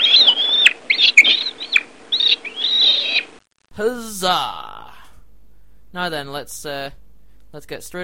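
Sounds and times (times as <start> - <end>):
monkey chattering in high-pitched squeaky bursts: 0.0 - 3.2
speech: 3.8 - 4.6, 5.9 - 8.0.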